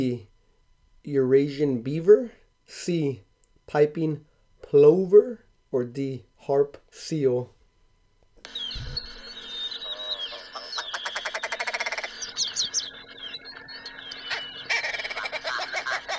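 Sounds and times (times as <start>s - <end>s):
speech: 0.0s - 0.3s, 1.0s - 7.6s
male willow ptarmigan clucking calls: 8.5s - 16.1s.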